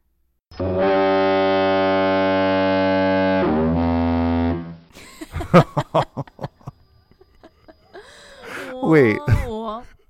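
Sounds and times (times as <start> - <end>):
speech: 0.6 - 1.0, 5.5 - 6.4, 8.9 - 9.5
lighthouse foghorn blast: 0.6 - 4.9
scattered laughter: 5.0 - 9.8
breathy sounds: 7.5 - 10.0.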